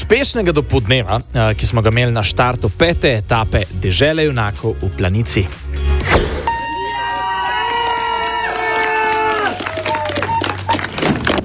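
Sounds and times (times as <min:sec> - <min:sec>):
speech: 0:00.1 - 0:06.3
scattered shouts: 0:06.4 - 0:10.8
crowd cheering outdoors at a race start: 0:06.4 - 0:11.4
people clapping: 0:06.5 - 0:11.4.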